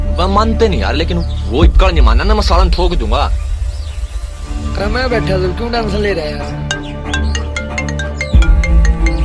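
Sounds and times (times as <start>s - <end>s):
speech: 0.2s - 3.4s, 4.8s - 6.7s
melodic phone ringtone for an incoming call: 6.7s - 9.2s.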